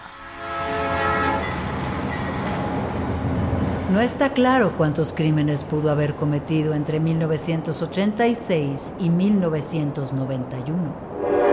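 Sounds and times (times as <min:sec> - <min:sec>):
train horn: 0:00.0 - 0:03.6, 0:11.1 - 0:11.5
train rolling on railway tracks: 0:00.0 - 0:10.0
speech: 0:03.9 - 0:11.1.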